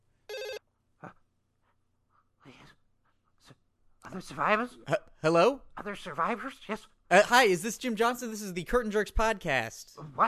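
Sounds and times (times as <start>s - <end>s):
electronic telephone ring of an outgoing call: 0.3s - 0.6s
speech: 4.2s - 10.2s.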